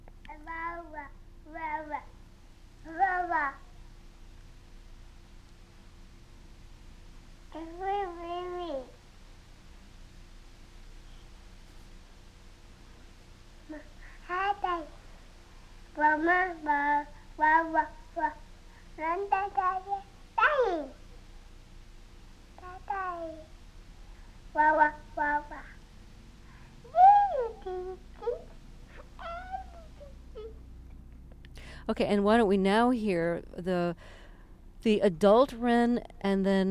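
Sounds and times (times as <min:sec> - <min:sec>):
toddler about a year and a half old babbling: 0:00.3 - 0:02.1, 0:02.8 - 0:03.7, 0:07.5 - 0:09.0, 0:13.7 - 0:15.0, 0:16.0 - 0:21.0, 0:22.6 - 0:23.5, 0:24.6 - 0:25.8, 0:26.9 - 0:30.6
speech: 0:24.6 - 0:25.6, 0:31.9 - 0:34.2, 0:34.8 - 0:36.6.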